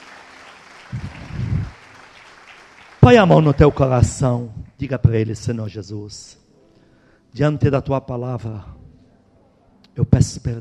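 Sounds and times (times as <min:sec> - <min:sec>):
crowd clapping: 0:00.0 - 0:04.5
steady hiss of room noise: 0:00.0 - 0:10.5
speech: 0:03.1 - 0:06.4, 0:07.3 - 0:08.8, 0:10.0 - 0:10.5.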